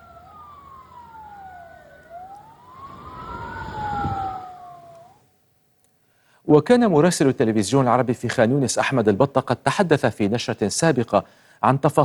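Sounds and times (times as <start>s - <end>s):
low traffic rumble: 0.0s - 5.2s
ambulance siren wailing in central Gaza: 0.0s - 5.3s
speech: 6.5s - 12.0s.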